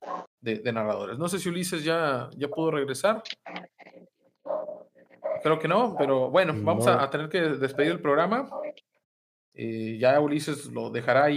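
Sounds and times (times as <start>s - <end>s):
speech: 0.4s - 3.7s, 5.4s - 8.7s, 9.6s - 11.3s
dog barking and yipping: 4.4s - 5.5s.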